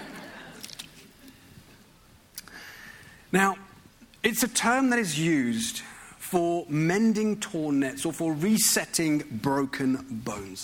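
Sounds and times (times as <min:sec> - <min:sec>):
wet mouth clicks: 0:02.3 - 0:02.5
speech: 0:03.3 - 0:03.6, 0:04.2 - 0:10.6.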